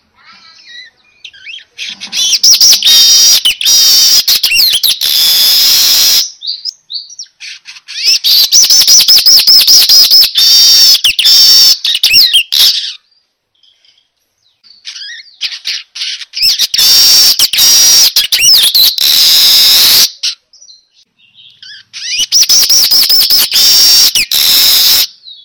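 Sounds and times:
manyar weaver lure call song: 0.4 - 25.4.

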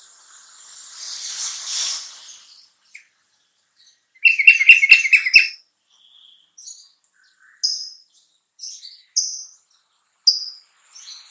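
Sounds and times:
bulbul thin high chirps: 3.9 - 9.6, 10.3 - 11.2
bulbul chattering: 4.2 - 5.6.

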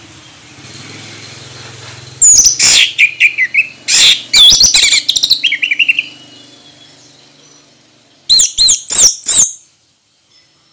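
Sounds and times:
Orange-headed thrush singing vigorously in Ngeplong song style: 2.2 - 7.7, 8.3 - 9.7.

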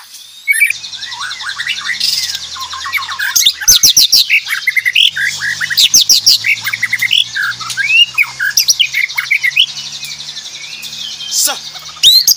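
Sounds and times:
Aceh white-rumped shama singing a fast varied song: 0.6 - 12.3.

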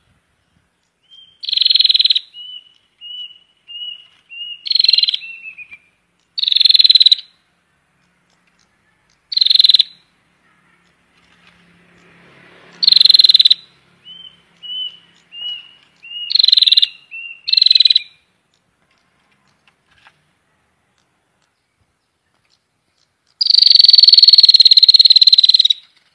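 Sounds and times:
prinia buzzy rattling call bursts: 1.4 - 5.6, 6.2 - 7.4, 8.0 - 10.1, 10.8 - 20.2, 22.4 - 26.1.

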